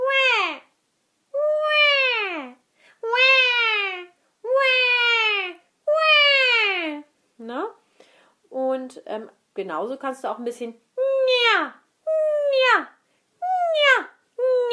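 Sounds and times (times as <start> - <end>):
voice imitating a crying baby as a vocal exercise: 0.0 - 0.7, 1.4 - 7.1, 11.0 - 14.7
speech: 8.9 - 11.8.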